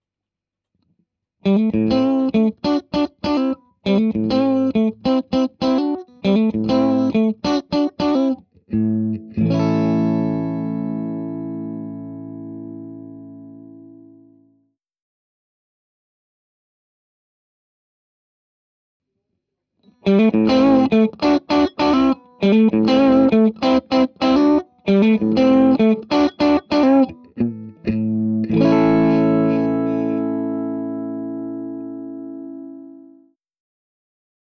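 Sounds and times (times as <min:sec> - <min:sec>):
clean electric guitar through a boosted amplifier: 0:01.4 - 0:14.5, 0:19.9 - 0:33.2.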